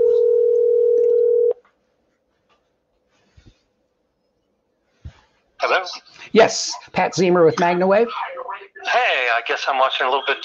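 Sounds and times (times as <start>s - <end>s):
telephone tone as a call is placed: 0.0s - 1.6s
speech: 5.6s - 10.4s.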